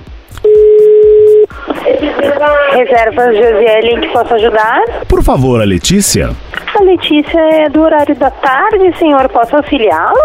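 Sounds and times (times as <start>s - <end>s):
telephone being dialed with touch-tone beeps: 0.4s - 1.5s
speech: 2.4s - 10.2s.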